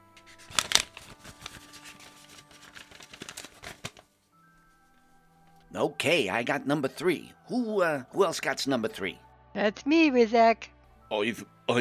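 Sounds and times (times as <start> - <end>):
paper slips marked with team numbers rustling in a bowl: 0.2 - 4.1
speech: 5.7 - 11.7.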